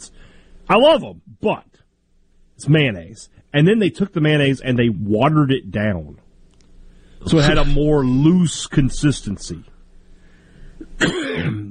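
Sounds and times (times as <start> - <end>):
speech: 0.7 - 1.8, 2.6 - 6.2, 7.2 - 9.7, 10.9 - 11.6
person gag coughing: 10.9 - 11.6.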